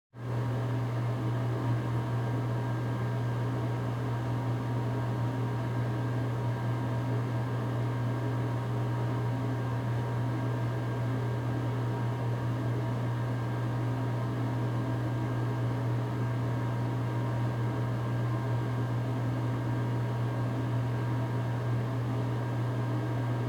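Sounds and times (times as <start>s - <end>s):
bathroom fan running: 0.2s - 23.4s.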